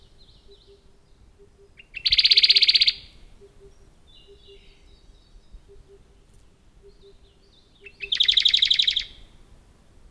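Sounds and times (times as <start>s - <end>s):
Radde's warbler Phylloscopus schwarzi song with trill: 0.0s - 9.4s.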